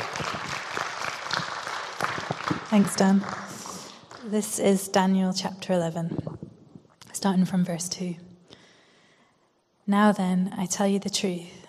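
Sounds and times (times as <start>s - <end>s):
crowd of people clapping: 0.0s - 4.6s
speech: 2.7s - 3.4s, 4.2s - 6.3s, 7.2s - 8.3s, 9.9s - 11.6s.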